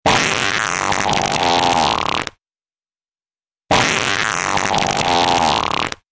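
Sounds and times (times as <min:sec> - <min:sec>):
person farting in the morning: 0:00.0 - 0:02.4, 0:03.7 - 0:06.1.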